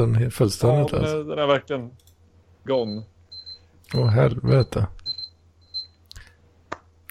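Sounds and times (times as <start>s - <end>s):
speech: 0.0s - 3.1s, 3.9s - 5.0s
kitchen timer alarm beeping for boiling potatoes: 2.7s - 6.0s.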